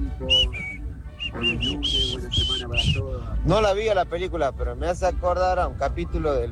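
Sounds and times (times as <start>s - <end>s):
band playing: 0.0s - 3.0s
speech: 0.2s - 0.4s, 1.4s - 6.5s
bright whistled melody: 0.2s - 3.1s.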